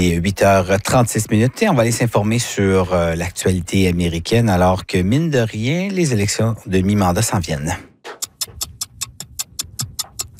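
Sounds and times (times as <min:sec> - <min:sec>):
speech: 0:00.0 - 0:07.9
clock ticking: 0:08.2 - 0:10.3.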